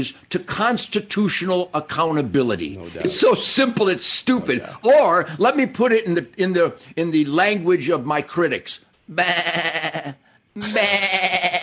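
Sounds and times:
speech: 0.0 - 11.6
person imitating sheep bleating: 9.1 - 11.6.

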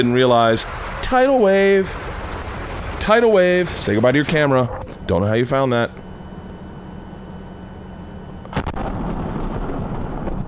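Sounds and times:
speech: 0.0 - 2.1, 3.0 - 6.0
heavy sustained low rumble: 0.0 - 5.2, 5.9 - 10.4
explosion in a video being played: 0.3 - 5.0, 8.5 - 10.4.

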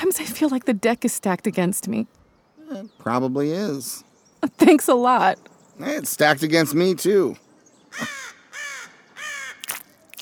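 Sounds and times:
speech: 0.2 - 8.3
bird cawing overhead: 7.9 - 10.1.

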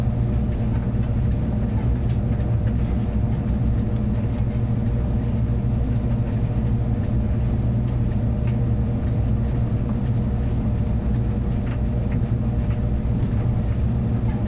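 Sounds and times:
clothes dryer rumbling with a deep even drone: 0.0 - 14.4.

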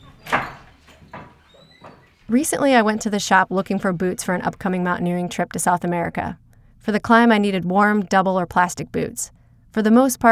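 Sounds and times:
wooden door of a ski shop squeaking open: 0.0 - 3.3
speech: 2.3 - 10.2.

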